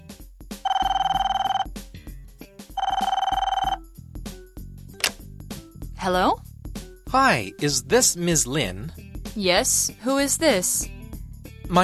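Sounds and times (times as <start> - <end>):
electronic telephone ring tone heard on the caller's end of a line: 0.6 - 1.7, 2.8 - 3.8
speech: 6.0 - 6.4, 7.1 - 10.9.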